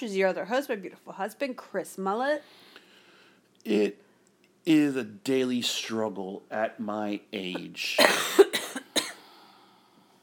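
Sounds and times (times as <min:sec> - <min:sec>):
speech: 0:00.0 - 0:02.8, 0:03.6 - 0:04.0, 0:04.6 - 0:08.4
harsh coughing: 0:08.0 - 0:09.3.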